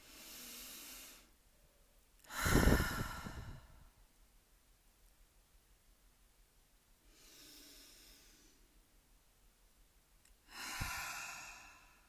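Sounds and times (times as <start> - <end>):
slow deep human breaths inhaling and exhaling: 0.0 - 1.3, 2.3 - 4.0, 7.0 - 8.8, 10.4 - 12.0.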